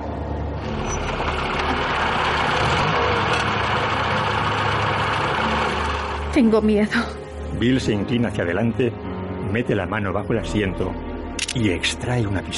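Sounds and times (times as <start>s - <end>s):
car engine idling: 0.0s - 6.6s
speech: 6.4s - 11.0s, 11.6s - 12.5s.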